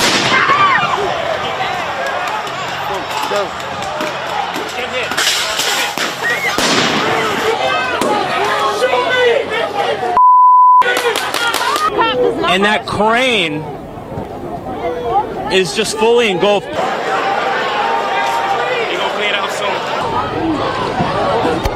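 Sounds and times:
crowd noise: 0.0s - 21.7s
people shouting: 0.1s - 10.2s, 16.0s - 21.7s
speech: 3.4s - 3.6s, 12.5s - 13.8s, 15.5s - 17.2s
fireworks crackling and banging in a busy street: 4.6s - 7.4s
steady electronic beep: 10.2s - 10.9s.

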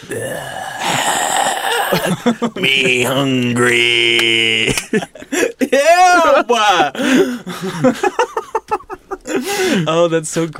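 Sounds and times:
speech: 0.0s - 1.2s, 2.0s - 8.4s, 9.3s - 10.5s
voice imitating heavy mouth breathing: 0.0s - 2.2s
laughter: 1.9s - 3.3s, 4.6s - 9.8s.

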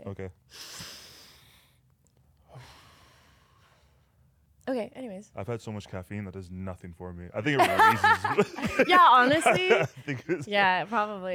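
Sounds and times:
speech: 0.1s - 0.9s, 4.7s - 11.3s
deep airy breathing: 0.5s - 1.8s, 2.4s - 4.2s
laughter: 7.4s - 11.3s.

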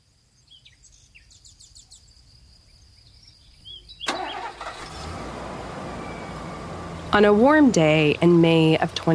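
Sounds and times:
birds chirping outdoors: 0.3s - 9.1s
pickup truck engine cranking and running: 4.0s - 9.1s
speech: 7.1s - 9.1s.

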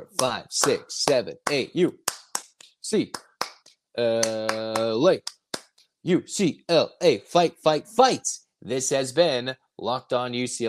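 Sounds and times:
speech: 0.1s - 2.2s, 2.9s - 3.3s, 4.0s - 5.4s, 6.0s - 10.6s
rhythmic eight-count hand clapping: 0.1s - 5.8s.

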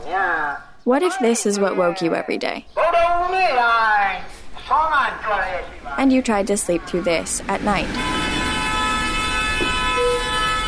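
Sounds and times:
speech: 0.1s - 4.0s, 5.1s - 8.2s
vehicle horns honking in busy road traffic in Yangon Myanmar: 6.2s - 10.6s.

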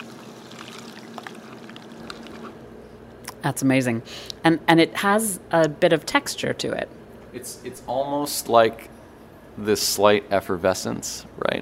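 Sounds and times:
cocktail pouring through a tea strainer: 0.0s - 2.5s
speech: 3.4s - 8.9s, 9.6s - 11.6s.

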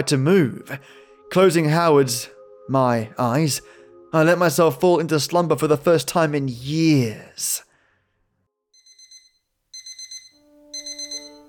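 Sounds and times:
speech: 0.0s - 7.7s
bedside alarm clock beeping: 8.8s - 11.4s.

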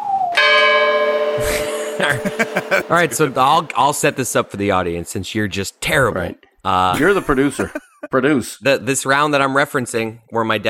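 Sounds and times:
bell ringing: 0.4s - 4.6s
laughter: 1.4s - 4.5s, 7.0s - 8.1s
speech: 2.0s - 10.6s.

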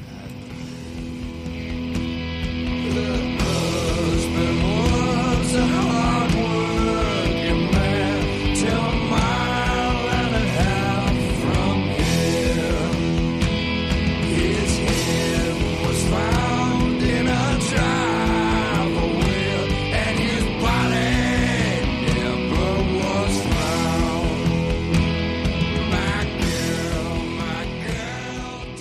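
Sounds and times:
loud full band arrangement: 0.0s - 28.7s
two men singing a song together: 2.7s - 25.0s, 25.8s - 28.7s.

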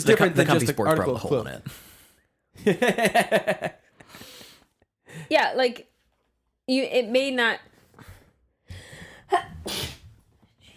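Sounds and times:
speech: 0.0s - 1.9s, 2.6s - 4.3s, 5.1s - 5.9s, 6.7s - 8.1s, 9.3s - 9.9s
person sneezing: 9.5s - 10.1s.

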